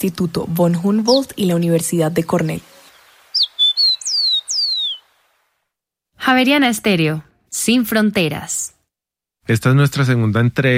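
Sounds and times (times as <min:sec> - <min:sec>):
speech: 0:00.0 - 0:02.7, 0:06.3 - 0:08.8, 0:09.5 - 0:10.7
Colombian rufous-collared sparrow singing whistled notes: 0:02.7 - 0:05.2.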